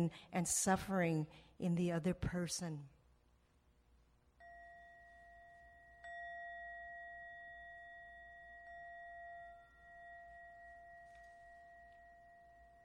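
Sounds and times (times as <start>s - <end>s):
speech: 0.0s - 2.9s
mindfulness bell being struck: 4.4s - 12.8s.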